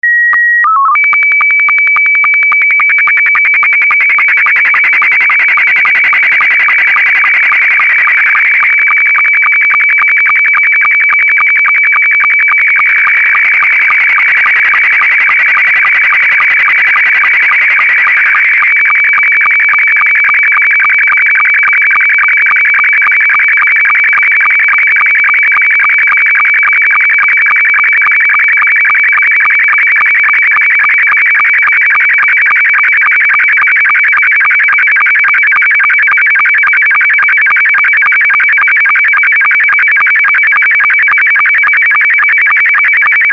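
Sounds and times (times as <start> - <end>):
SSTV analog S2 signal: 0.0 - 43.3.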